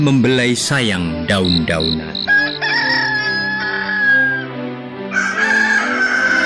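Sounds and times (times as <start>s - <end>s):
speech: 0.0s - 2.9s
roosters crowing answering one another: 2.2s - 6.4s.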